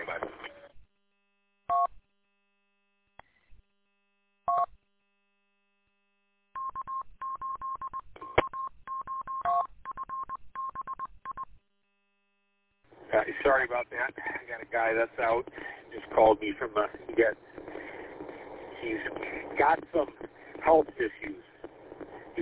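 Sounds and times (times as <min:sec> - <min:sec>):
telephone keypad touch-tone dialing beeps: 0:06.6 - 0:11.4
speech: 0:13.2 - 0:17.4, 0:18.8 - 0:21.5.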